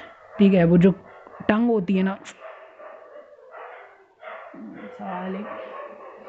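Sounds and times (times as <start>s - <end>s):
dogs barking: 0.0s - 6.2s
speech: 0.4s - 2.4s.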